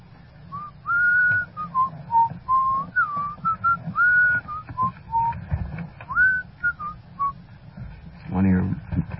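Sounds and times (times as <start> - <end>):
low rumbling background: 0.0 - 9.1
person whistling a lively tune: 0.5 - 5.4, 6.1 - 7.4.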